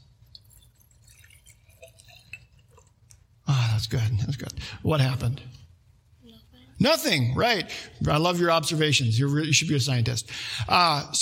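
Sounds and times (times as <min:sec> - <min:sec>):
liquid trickling and splashing into a glass jar: 0:00.1 - 0:03.4
speech: 0:03.8 - 0:05.6, 0:06.8 - 0:11.2.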